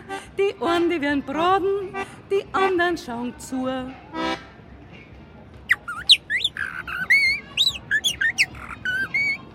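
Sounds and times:
speech: 0.4 - 4.3
short harsh blackbird call: 5.7 - 9.4
blackbird singing: 5.7 - 9.5.

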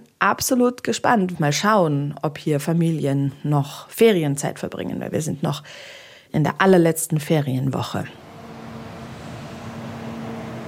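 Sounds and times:
speech: 0.2 - 8.2
cars passing on a federal highway: 8.2 - 10.6.

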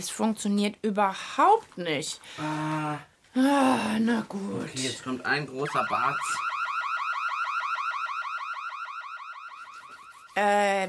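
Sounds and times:
speech: 0.0 - 6.5, 10.4 - 10.8
warbling electronic alarm: 5.5 - 10.7.

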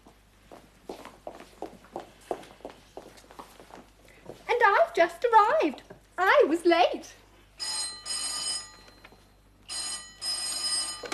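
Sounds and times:
speech: 5.0 - 7.2
telephone ringing in classic double-ring pattern: 7.6 - 11.1.

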